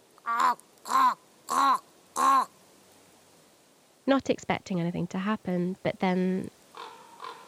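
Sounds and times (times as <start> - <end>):
human voice imitating a raven call in a snowy winter oak forest: 0.2 - 2.6, 6.8 - 7.4
speech: 0.3 - 1.1, 4.1 - 6.6.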